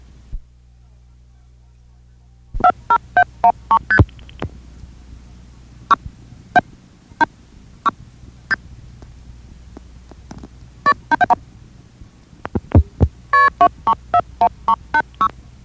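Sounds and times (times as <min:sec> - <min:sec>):
faint low hum: 0:00.0 - 0:15.6
telephone multi-frequency dialing pulses: 0:11.1 - 0:11.4, 0:13.4 - 0:15.3.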